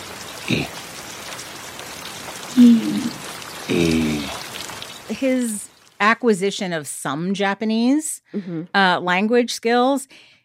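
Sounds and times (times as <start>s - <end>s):
rain falling: 0.0s - 6.1s
speech: 0.5s - 0.8s, 5.2s - 10.3s.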